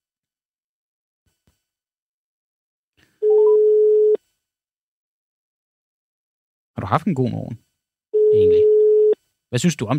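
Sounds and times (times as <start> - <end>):
steady telephone tone: 3.2 - 4.2, 8.2 - 9.2
speech: 6.9 - 7.7, 8.3 - 8.6, 9.5 - 9.9.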